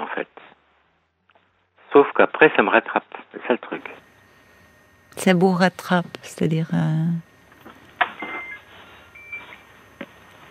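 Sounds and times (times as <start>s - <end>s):
speech: 0.2s - 0.6s, 2.0s - 4.0s, 5.1s - 7.3s
short electronic beeps of a kitchen timer for pasta: 8.2s - 8.6s.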